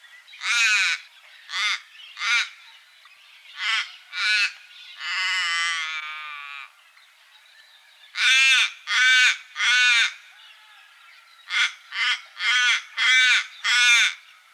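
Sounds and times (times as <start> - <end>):
little raven cawing in Canberra: 0.4 - 2.6, 3.6 - 6.7, 8.2 - 10.8, 11.5 - 14.3.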